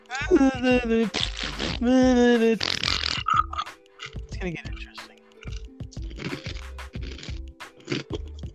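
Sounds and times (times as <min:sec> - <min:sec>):
speech: 0:00.3 - 0:02.9, 0:04.4 - 0:04.9
crunchy chewing of frosted flakes breakfast cereal: 0:02.6 - 0:04.2, 0:05.4 - 0:08.5.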